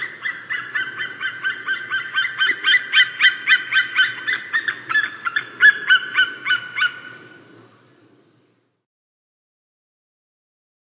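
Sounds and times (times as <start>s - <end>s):
white-tailed eagle calling in a fast run of yelping harmonic notes: 0.0s - 7.5s.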